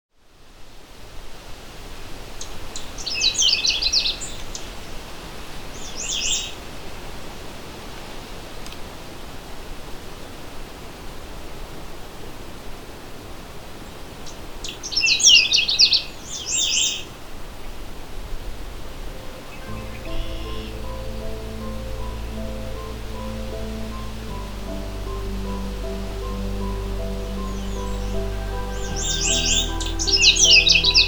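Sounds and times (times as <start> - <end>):
hiss: 0.2 - 31.0
Canada Warbler singing: 2.8 - 4.8, 5.8 - 6.6, 14.6 - 17.1, 19.1 - 31.0.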